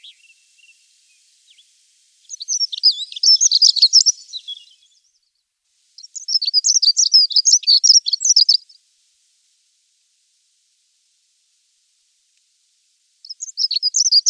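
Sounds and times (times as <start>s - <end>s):
bird singing high rapid twittering phrases: 0.0s - 5.2s, 6.0s - 8.8s, 13.2s - 14.2s.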